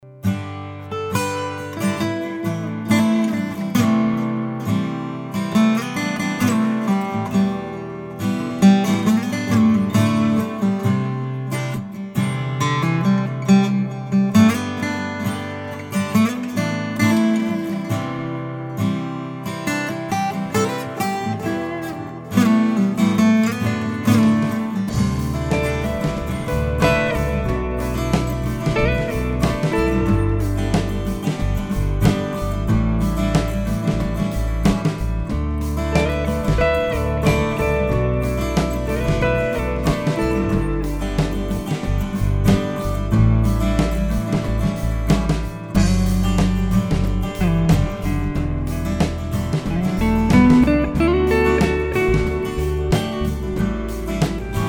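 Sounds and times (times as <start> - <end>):
songwriter guitars: 0.0 - 54.6.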